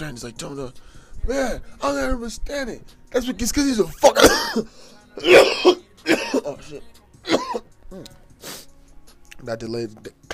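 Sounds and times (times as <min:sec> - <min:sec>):
speech: 0:00.0 - 0:08.2, 0:09.4 - 0:10.3
person coughing after a dab hit: 0:04.2 - 0:06.6, 0:07.2 - 0:07.7
throaty strained vocal sounds: 0:04.6 - 0:09.4.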